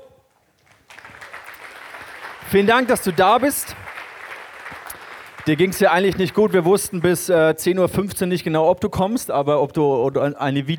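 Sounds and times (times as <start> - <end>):
audience applause: 0.6 - 7.2
speech: 2.5 - 3.8, 5.5 - 10.7.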